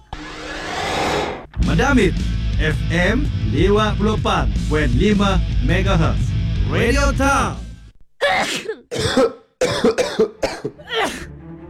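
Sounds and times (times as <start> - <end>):
speech: 1.8 - 7.6
person coughing harshly: 8.2 - 11.3.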